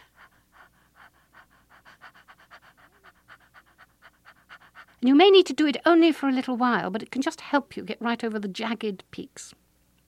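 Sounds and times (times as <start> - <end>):
quick light panting breaths demonstrating labour breathing: 0.0 - 5.1
speech: 5.0 - 9.6.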